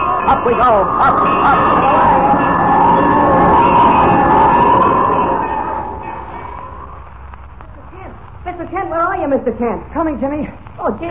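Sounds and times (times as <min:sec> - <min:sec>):
alarm bell rung by a person: 0:00.0 - 0:07.0
speech: 0:00.3 - 0:03.1, 0:09.2 - 0:11.0.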